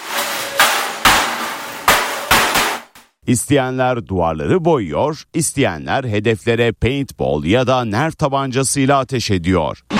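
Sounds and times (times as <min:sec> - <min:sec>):
hammers and sticks smashing bottles and televisions: 0:00.0 - 0:03.0
speech: 0:03.3 - 0:09.9.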